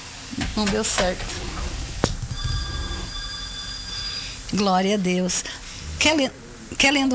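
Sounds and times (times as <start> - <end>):
low noise: 0.0 - 7.1
speech: 0.6 - 1.5, 4.5 - 7.1
telephone ringing with faint steady high electronic tone: 1.2 - 5.5.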